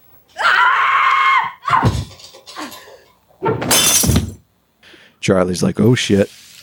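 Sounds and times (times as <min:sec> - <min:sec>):
woman screaming during a domestic fight in an apartment: 0:00.4 - 0:02.0
crashing impacts: 0:03.6 - 0:04.5
glass shattering: 0:03.7 - 0:04.4
speech: 0:05.3 - 0:06.6.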